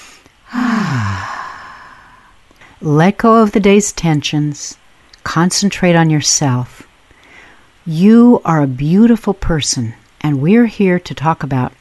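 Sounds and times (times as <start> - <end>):
deep breath let out as a sigh during a group relaxation exercise: 0.0 - 2.4
speech: 2.8 - 6.8, 7.9 - 11.7.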